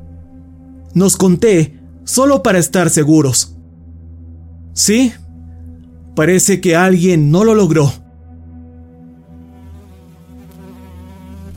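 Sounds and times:
speech: 1.0 - 3.6, 4.8 - 5.2, 6.2 - 8.0
fly buzzing: 9.0 - 11.5.

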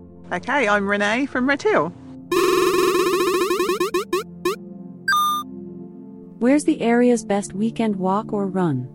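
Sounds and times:
speech: 0.3 - 2.0, 6.4 - 8.9
prize wheel spinning with bright tonal ticks: 2.4 - 4.6.

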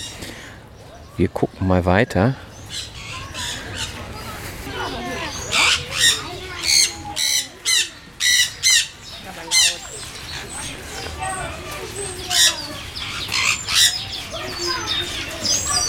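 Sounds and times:
other birds chattering faintly: 0.0 - 15.8
speech: 1.2 - 2.9
sun conure parrot squawking: 5.3 - 15.8.

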